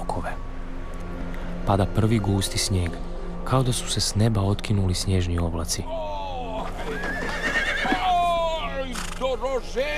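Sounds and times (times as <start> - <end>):
speech: 1.7 - 6.2, 9.2 - 9.9
horse harnessed to a sleigh neighing: 6.6 - 8.3, 8.9 - 9.3.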